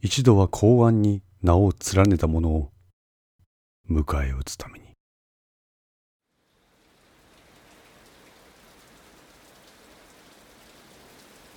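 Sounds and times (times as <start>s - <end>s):
speech: 0.0s - 2.7s, 3.9s - 4.8s
heavy rain: 6.4s - 11.5s.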